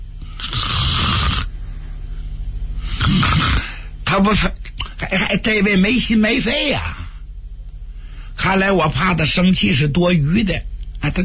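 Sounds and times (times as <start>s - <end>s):
voice imitating snoring of a man dozing off in a chair: 0.2s - 1.5s, 2.8s - 3.9s
speech: 4.1s - 7.0s, 8.4s - 11.2s.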